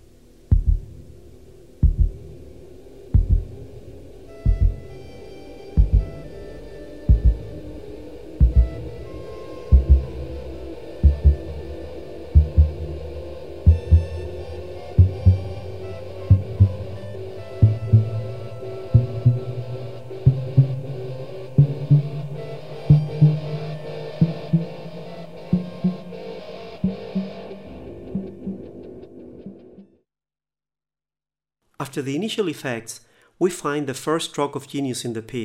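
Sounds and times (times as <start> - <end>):
sustained dark hum with faint higher tones: 0.0 - 29.8
slow steady heartbeat sound effect thumping: 0.5 - 1.2, 1.8 - 9.1, 9.7 - 14.4, 15.0 - 21.0, 21.6 - 23.6, 26.8 - 28.8
speech: 31.9 - 35.4.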